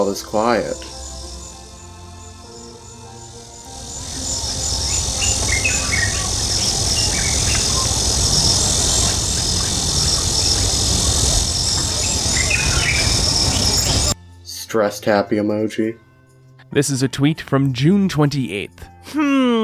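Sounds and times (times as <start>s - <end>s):
speech: 0.0s - 1.0s, 14.7s - 16.1s, 16.7s - 19.6s
birds chirping and calling outside a house in the morning: 0.0s - 14.2s
insects buzzing outside a house in the morning: 0.0s - 14.2s
low rumble: 2.7s - 14.2s.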